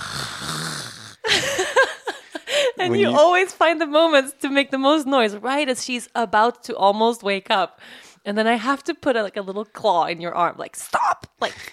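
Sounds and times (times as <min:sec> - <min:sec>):
voice imitating the loud yawn of a very large man: 0:00.0 - 0:01.3
speech: 0:02.8 - 0:11.7.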